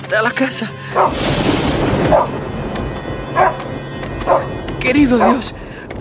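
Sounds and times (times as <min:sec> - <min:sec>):
noisy rumbling background: 0:00.0 - 0:05.9
speech: 0:00.1 - 0:02.4, 0:04.8 - 0:05.6
guard dog barking: 0:01.0 - 0:01.2.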